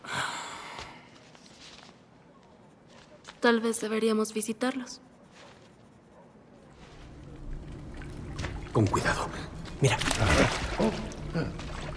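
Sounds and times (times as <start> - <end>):
speech: 3.4 - 5.1, 8.8 - 11.6
water pouring in a steady splashy stream: 6.8 - 11.9
person murmuring: 10.7 - 11.7.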